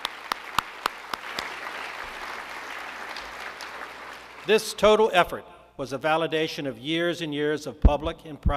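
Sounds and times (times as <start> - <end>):
audience applause: 0.0 - 4.6
speech: 4.5 - 8.5.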